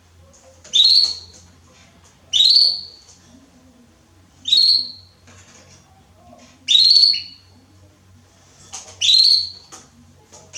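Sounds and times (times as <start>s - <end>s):
faint background sounds: 0.0s - 10.5s
male Belgian canary singing: 0.7s - 1.4s, 2.3s - 3.0s, 4.4s - 5.1s, 6.7s - 7.5s, 9.0s - 9.7s.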